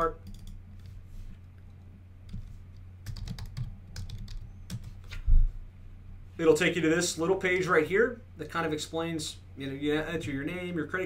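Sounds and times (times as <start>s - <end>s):
speech: 0.0s - 0.3s, 6.4s - 11.0s
web address typed on a computer keyboard: 0.0s - 0.6s, 2.3s - 5.0s.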